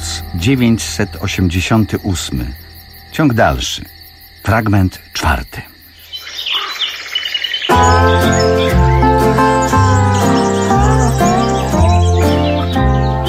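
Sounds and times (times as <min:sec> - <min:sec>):
sustained instrumental tones: 0:00.0 - 0:03.8, 0:07.7 - 0:13.2
birds singing at dawn: 0:00.0 - 0:13.2
speech: 0:00.3 - 0:02.6, 0:03.2 - 0:05.7.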